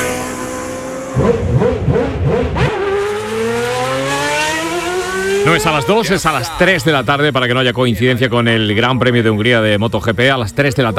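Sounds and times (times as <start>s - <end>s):
Formula 1 race car engine revving: 0.0s - 6.4s
speech: 5.5s - 10.9s.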